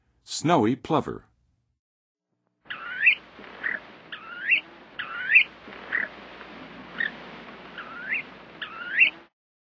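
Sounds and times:
snowy plover calling in the western USA: 2.7s - 9.3s.

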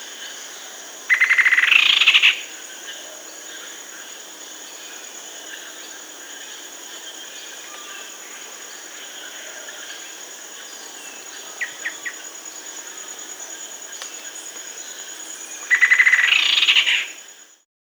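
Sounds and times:
faint insect-like hiss: 0.0s - 17.7s
rufous-winged antwren song climbing into rolling chatter in South America: 7.1s - 17.3s.

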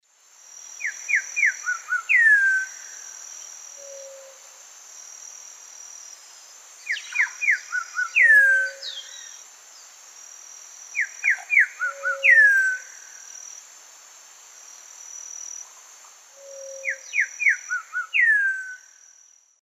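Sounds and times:
Saltator coerulescens song in the Eastern Lowlands of South America: 0.8s - 4.4s, 6.1s - 10.0s, 11.0s - 13.5s, 16.4s - 19.5s.

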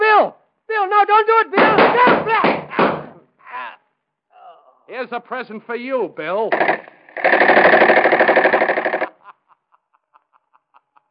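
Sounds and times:
speech: 1.0s - 3.0s, 4.9s - 7.7s
submachine gun burst of rapid shots: 6.5s - 9.2s
laughter: 9.0s - 11.0s.

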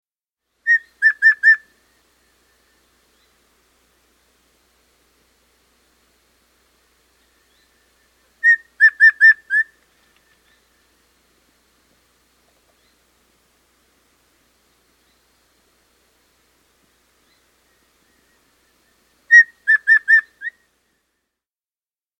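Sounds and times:
Bay Antpitta call in South America: 0.6s - 1.8s, 7.2s - 10.8s, 19.3s - 20.6s.

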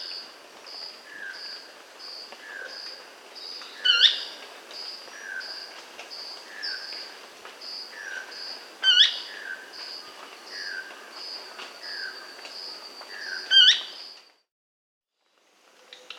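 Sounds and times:
Brownish Flycatcher Cnipodectes subbrunneus calling in Bolivia: 2.4s - 14.1s.

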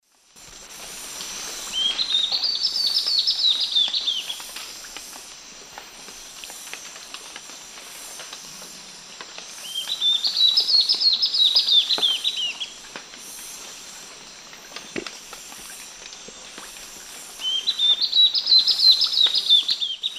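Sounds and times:
Hylophylax naevius song in varzea, South America: 1.7s - 4.4s, 9.6s - 12.8s, 17.4s - 20.1s.

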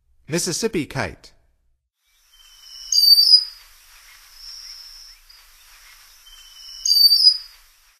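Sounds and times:
Mississippi Kite calling in North America: 2.4s - 7.9s.

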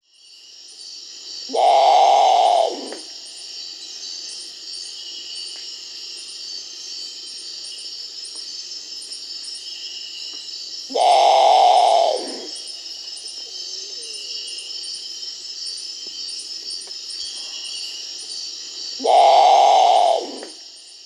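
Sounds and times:
Great Potoo Nyctibius grandis calling in Peru: 1.5s - 3.1s, 10.9s - 12.7s, 19.0s - 20.6s.

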